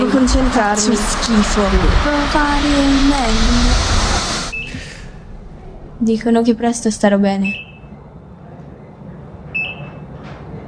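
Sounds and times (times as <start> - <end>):
low steady rumble: 0.0 - 9.9
speech: 0.2 - 4.0, 6.0 - 7.6
high electronic beep: 4.5 - 5.0, 7.4 - 8.0, 9.6 - 10.0.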